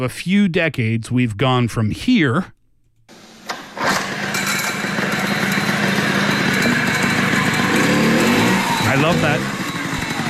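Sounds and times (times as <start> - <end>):
speech: 0.0 - 2.6, 9.0 - 9.6
Chinese motorcycle engine running: 3.9 - 10.2.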